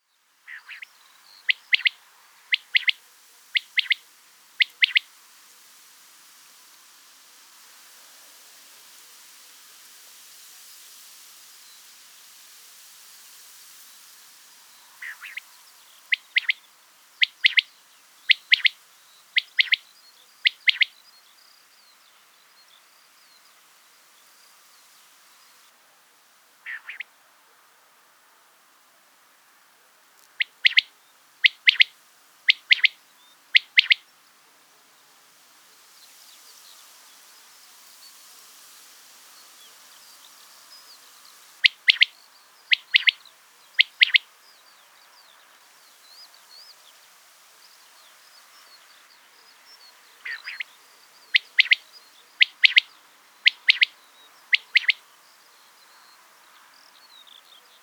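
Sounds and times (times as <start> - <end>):
quail calling: 0.5 - 0.9, 1.5 - 3.0, 3.6 - 4.0, 4.6 - 5.1, 15.0 - 15.4, 16.1 - 16.6, 17.2 - 17.7, 18.3 - 18.8, 19.4 - 19.8, 20.4 - 20.9, 26.6 - 27.1, 30.4 - 31.9, 32.5 - 34.0, 41.6 - 42.1, 42.7 - 43.2, 43.8 - 44.2, 50.2 - 50.7, 51.3 - 55.0.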